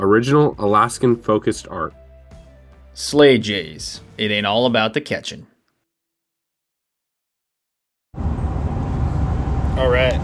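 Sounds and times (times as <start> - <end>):
speech: 0.0 - 2.0, 3.0 - 5.5, 9.8 - 10.2
road and engine rumble in a truck cab while driving: 8.2 - 10.2.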